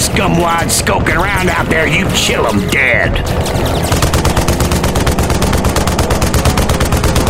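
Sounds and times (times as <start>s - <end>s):
speech: 0.2s - 4.2s
RPK machine gun firing a long burst from a vehicle: 3.2s - 7.2s.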